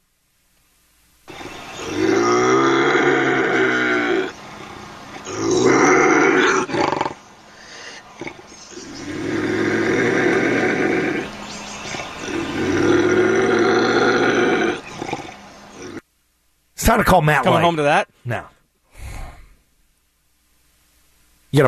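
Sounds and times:
bobcat growling and snarling in a cage: 1.3 - 16.0
speech: 16.9 - 18.5.

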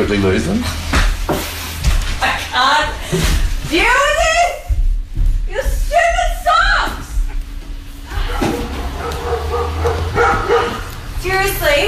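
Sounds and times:
speech: 0.0 - 0.8, 3.1 - 4.1, 11.3 - 11.8
busy hum: 0.0 - 11.8
several dogs barking: 8.2 - 11.2.

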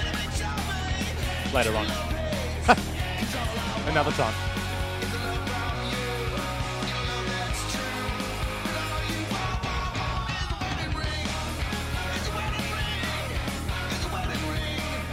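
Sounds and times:
loud dense rock song with driving drums and full-band guitars: 0.0 - 15.1
speech: 1.5 - 4.5.

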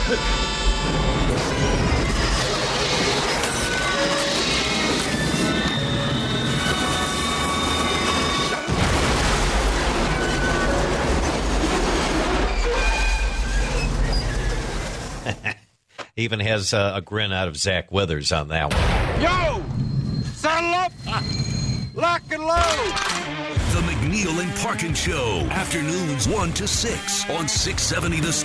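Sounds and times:
grinding screeching metal: 0.0 - 8.7, 12.2 - 15.0, 19.8 - 27.4
speech: 0.1 - 1.9, 16.2 - 19.7, 22.1 - 28.4
train wreck crash sound effect: 0.8 - 15.4.

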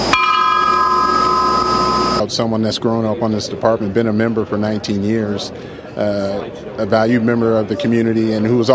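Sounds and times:
ceremonial memorial bell ringing: 0.1 - 2.2
speech: 2.4 - 8.7.

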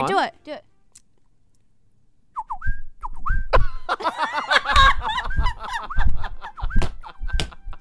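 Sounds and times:
speech: 0.0 - 0.7
person whistling a bird call in a studio: 2.4 - 3.6, 5.9 - 7.0
people laughing and reacting: 3.6 - 7.7.

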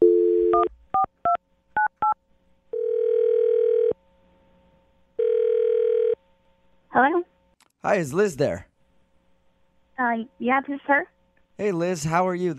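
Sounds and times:
steady telephone dial tone: 0.0 - 0.7, 2.8 - 4.0, 5.2 - 6.2
long loud telephone ringing tones: 2.8 - 4.0, 5.2 - 6.2
speech: 7.0 - 8.7, 10.1 - 12.5.

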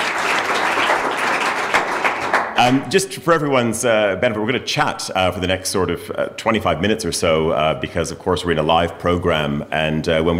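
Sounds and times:
audience at a live program applauding: 0.0 - 2.8
speech: 2.6 - 10.3.

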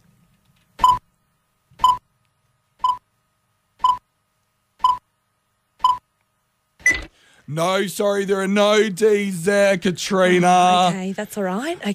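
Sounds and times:
short electronic beeps like a countdown cue: 2.8 - 3.0, 3.8 - 4.0, 4.8 - 5.0, 5.8 - 6.0
speech: 7.5 - 11.9.

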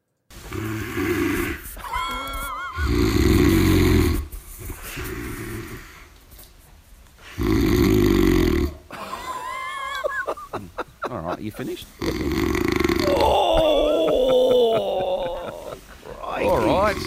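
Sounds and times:
man snoring loudly in bed: 0.5 - 1.6, 2.8 - 4.3, 7.3 - 8.8, 12.0 - 17.0
laughter: 1.8 - 2.9, 8.9 - 12.4, 13.0 - 17.0
speech: 11.4 - 12.5.

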